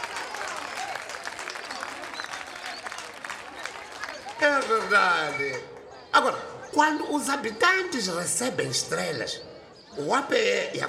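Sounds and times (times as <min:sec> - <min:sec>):
crowd applauding: 0:00.0 - 0:05.6
speech: 0:04.4 - 0:10.8.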